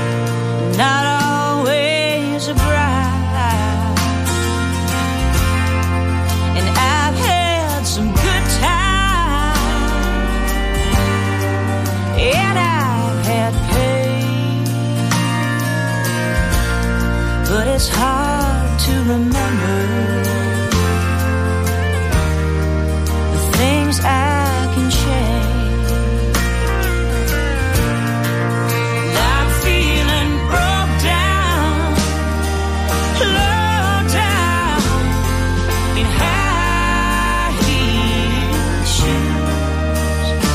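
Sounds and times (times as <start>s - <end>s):
pop song with bass, drums and backing instruments: 0.0s - 40.5s
woman singing a smooth melodic line: 0.6s - 4.3s, 6.6s - 10.4s, 12.1s - 15.7s, 17.4s - 20.9s, 23.4s - 26.4s, 29.0s - 40.5s
speech: 0.8s - 1.0s.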